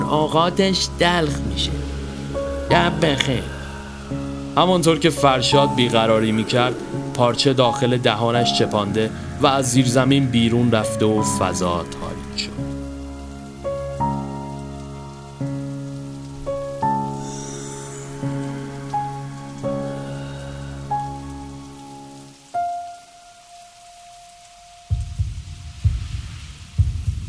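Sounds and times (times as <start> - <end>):
dark sustained musical drone: 0.0 - 22.5
speech: 0.1 - 1.8, 2.7 - 12.6
heartbeat sound effect: 24.9 - 27.2
heavier low thumping: 24.9 - 27.2.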